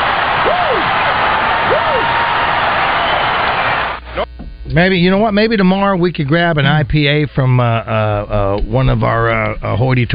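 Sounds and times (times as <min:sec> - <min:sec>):
arena basketball crowd cheering in Pine Bluff Arkansas: 0:00.0 - 0:04.1
rising and falling whoops or whistles: 0:01.6 - 0:03.5
speech: 0:04.7 - 0:10.1.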